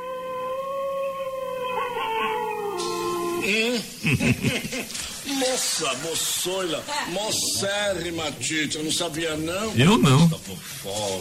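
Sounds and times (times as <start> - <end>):
German wolf howling and yelping: 0.0 - 3.5
speech: 3.4 - 11.1
laughter: 3.7 - 5.1.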